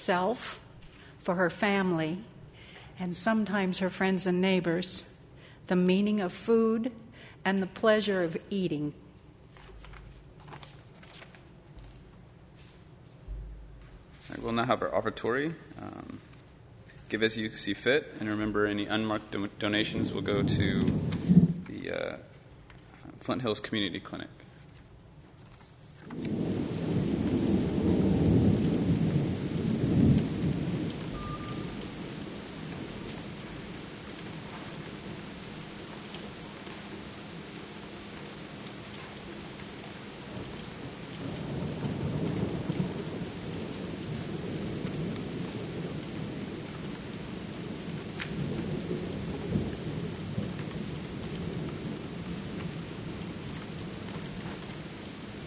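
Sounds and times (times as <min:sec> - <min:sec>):
speech: 0:00.0 - 0:00.6, 0:01.2 - 0:02.3, 0:03.0 - 0:09.0, 0:14.4 - 0:16.3, 0:17.1 - 0:21.3, 0:21.9 - 0:22.3, 0:23.2 - 0:24.4, 0:26.1 - 0:26.6
steady rain hissing: 0:00.0 - 0:55.4
deep rolls of thunder rumbling: 0:13.2 - 0:16.3, 0:18.3 - 0:22.4, 0:26.1 - 0:55.4.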